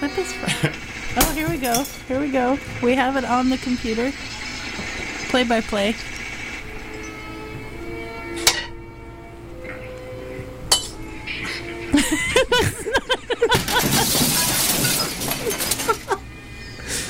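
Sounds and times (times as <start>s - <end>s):
speech: 0.1s - 0.8s, 1.4s - 4.3s, 5.3s - 6.1s
laughter: 0.4s - 0.9s, 11.5s - 14.6s, 15.4s - 16.3s
glass breaking and shattering into tinkling shards: 1.1s - 2.1s, 13.5s - 16.2s
glass clinking: 1.2s - 2.0s, 10.7s - 11.1s, 13.7s - 16.2s.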